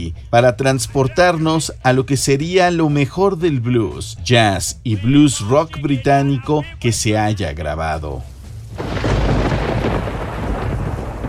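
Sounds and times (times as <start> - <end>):
speech: 0.0 - 9.0
heavy rain pouring: 8.3 - 11.2
deep thunder rumbling: 8.6 - 11.2.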